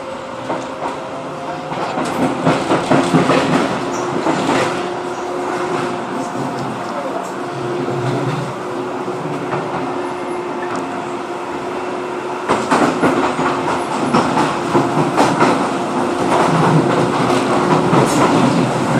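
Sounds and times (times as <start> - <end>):
automated light rail train running on tracks at Poplar: 0.0 - 18.9
train wheels clicking and clacking over rail joints: 0.4 - 8.6, 12.4 - 18.9.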